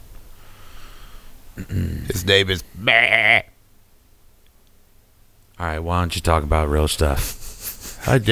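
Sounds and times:
person imitating a goat bleat: 1.6s - 3.5s
speech: 1.6s - 3.5s, 5.6s - 7.4s, 8.1s - 8.3s.

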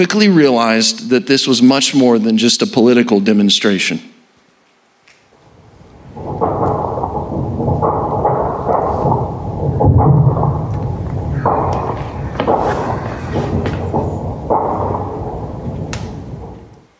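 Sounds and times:
speech: 0.0s - 4.2s
heavy bomb explosions during a battle in Khartoum: 5.4s - 16.9s.

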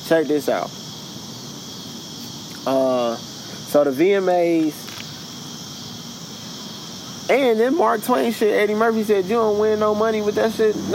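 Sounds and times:
crickets chirping in a high-pitched trill: 0.0s - 10.9s
faint hiss: 0.0s - 10.9s
speech: 0.1s - 0.8s, 2.6s - 4.8s, 7.3s - 10.9s.

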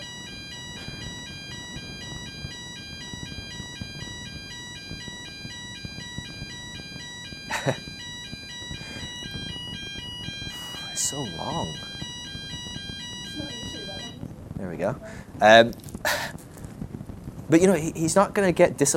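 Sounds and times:
fire alarm test ringing with pulsing electronic tones: 0.0s - 14.3s
speech: 7.7s - 7.9s, 11.2s - 11.9s, 14.7s - 15.8s, 17.5s - 18.9s.

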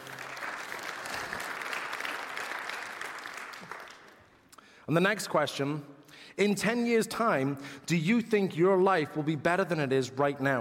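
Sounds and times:
audience applause: 0.0s - 4.4s
speech: 4.9s - 10.5s.

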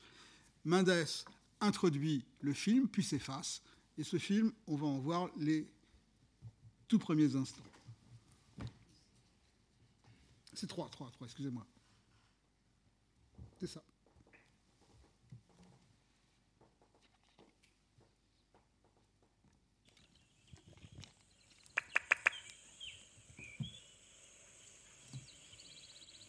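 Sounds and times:
speech: 0.6s - 5.8s, 6.9s - 7.7s, 10.6s - 11.8s, 13.6s - 13.9s
birds chirping in a thin continuous chorus: 19.9s - 26.2s.

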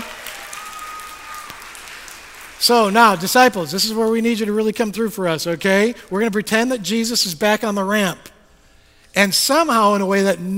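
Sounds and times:
audience applause: 0.0s - 3.5s
speech: 2.6s - 8.3s, 9.2s - 10.5s.

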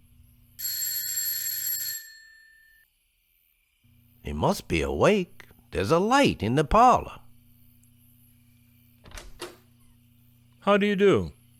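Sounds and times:
doorbell ringing at door of doctor's house: 0.6s - 2.8s
speech: 4.3s - 7.2s, 10.7s - 11.4s.

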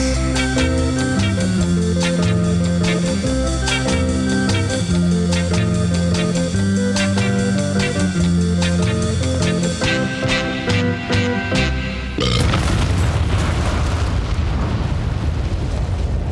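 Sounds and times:
orchestral music: 0.0s - 12.2s
loud explosion with roaring crackling rumble: 12.2s - 16.3s.

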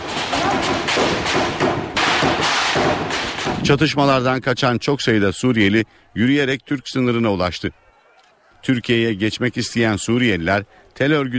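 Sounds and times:
gunfire from distant villages: 0.0s - 3.8s
steady noisy outdoor background: 0.0s - 11.3s
speech: 3.7s - 7.8s, 8.6s - 11.3s.

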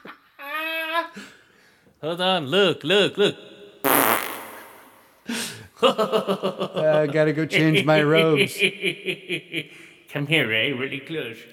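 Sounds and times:
speech: 2.0s - 3.5s, 5.8s - 11.5s
wet fart: 3.9s - 5.0s.

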